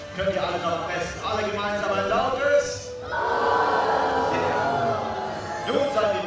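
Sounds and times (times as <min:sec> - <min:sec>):
speech: 0:00.2 - 0:03.3
large crowd booing together: 0:03.1 - 0:06.1.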